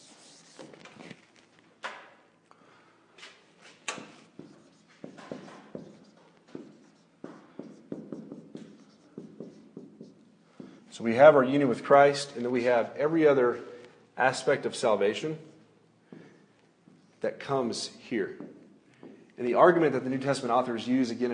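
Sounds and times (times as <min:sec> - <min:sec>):
scratchy strokes of someone drawing a wheel diagram by hand: 0:00.0 - 0:01.2, 0:04.0 - 0:10.4
speech: 0:11.0 - 0:15.5, 0:17.2 - 0:18.5, 0:19.4 - 0:21.3.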